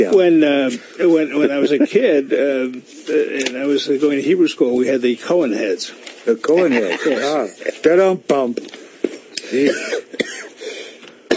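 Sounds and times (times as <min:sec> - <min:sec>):
speech: 0:00.0 - 0:08.8, 0:09.5 - 0:10.8
laughter: 0:01.1 - 0:02.3, 0:06.4 - 0:07.8
man clearing his throat: 0:09.5 - 0:10.5
man coughing: 0:09.5 - 0:10.6.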